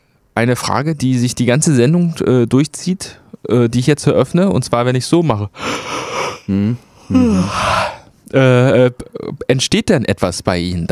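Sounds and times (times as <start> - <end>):
speech: 0.4 - 10.9
person yawning: 6.0 - 8.1.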